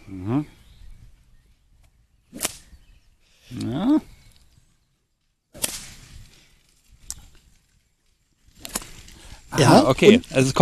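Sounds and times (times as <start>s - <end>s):
faint rustling and movement: 0.5s - 10.5s
whip cracking: 2.3s - 2.7s, 5.6s - 6.2s, 8.6s - 9.0s
speech: 9.6s - 10.5s.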